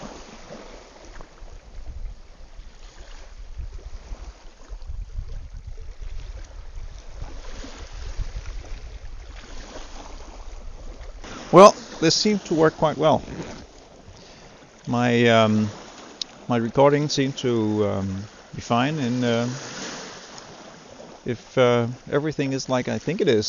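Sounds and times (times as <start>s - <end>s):
ocean waves washing against a boat: 0.0s - 23.4s
wind buffeting: 0.0s - 23.4s
speech: 11.5s - 13.6s, 14.9s - 15.8s, 16.5s - 19.7s, 21.2s - 23.4s.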